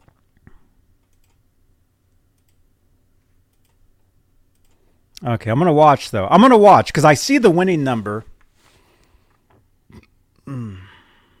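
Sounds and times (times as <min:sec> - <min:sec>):
speech: 0:05.2 - 0:08.3
loud burp: 0:09.9 - 0:11.0.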